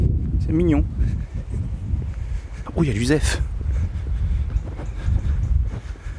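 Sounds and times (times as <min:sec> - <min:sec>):
strong wind on a beach buffeting the microphone: 0:00.0 - 0:06.1
speech: 0:00.5 - 0:01.3, 0:02.8 - 0:03.5.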